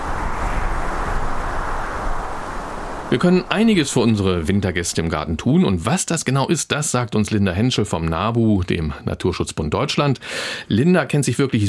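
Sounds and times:
icy wind blowing with low rumble: 0.0s - 5.4s
speech: 3.1s - 11.6s.

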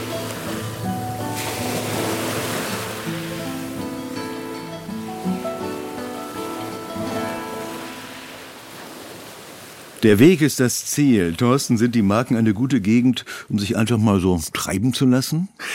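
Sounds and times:
ocean surf rushing: 0.0s - 10.4s
speech: 10.0s - 15.7s.

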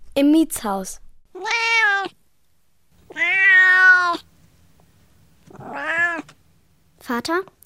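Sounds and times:
speech: 0.2s - 1.0s, 7.1s - 7.6s
cat meowing: 1.3s - 2.2s, 3.1s - 4.3s, 5.5s - 6.4s.

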